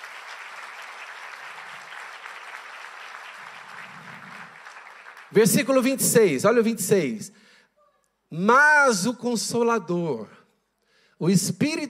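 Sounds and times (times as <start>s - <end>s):
audience applauding: 0.0s - 5.9s
speech: 5.3s - 7.5s, 8.3s - 10.4s, 11.2s - 11.8s.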